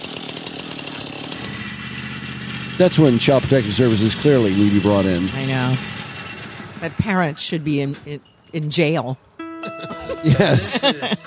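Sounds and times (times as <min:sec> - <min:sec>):
chainsaw running as a man cuts up in a tree: 0:00.0 - 0:08.4
speech: 0:02.8 - 0:06.0, 0:06.8 - 0:11.2
laughter: 0:09.6 - 0:11.2.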